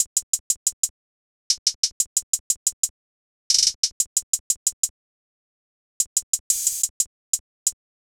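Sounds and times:
triplet hi-hat loop at a steady tempo: 0.0s - 0.9s, 1.5s - 2.9s, 3.5s - 5.0s, 6.0s - 7.9s.

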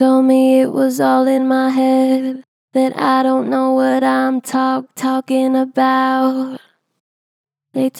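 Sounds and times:
vocals: 0.0s - 6.8s, 7.7s - 7.9s.

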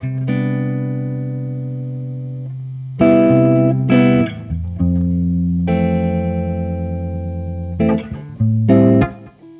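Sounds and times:
Christmas guitar loops in C major: 0.0s - 9.5s.

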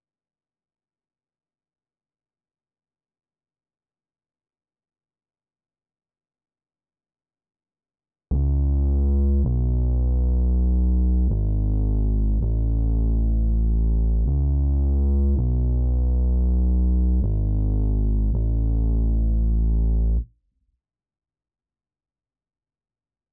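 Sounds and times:
bass loop in E major: 8.3s - 20.3s.

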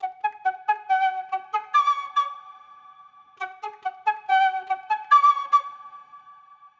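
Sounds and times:
processed wet flute loop in F sharp minor: 0.0s - 2.5s, 3.4s - 6.0s.

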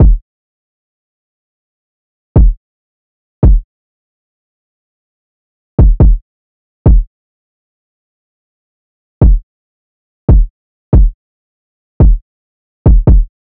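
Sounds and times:
kick drum: 0.0s - 0.2s, 2.4s - 2.6s, 3.4s - 3.7s, 5.8s - 6.2s, 6.9s - 7.1s, 9.2s - 9.5s, 10.3s - 11.2s, 12.0s - 12.2s, 12.9s - 13.3s
140 BPM drill drum loop: 2.4s - 2.6s, 3.4s - 3.6s, 5.8s - 6.2s, 12.9s - 13.3s.

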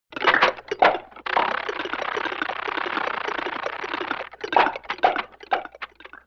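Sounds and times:
vintage cartoon foley comedy motor: 1.2s - 5.1s.

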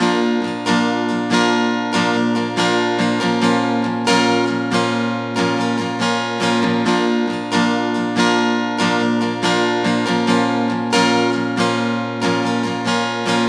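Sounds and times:
guitar loop at 140 BPM in G minor: 0.0s - 13.4s.

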